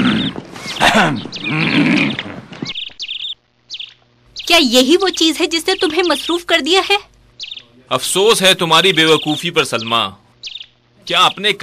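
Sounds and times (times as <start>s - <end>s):
horse whinnying: 0.0s - 2.6s
speech: 0.9s - 1.8s, 4.5s - 7.1s, 7.9s - 10.2s, 11.1s - 11.6s.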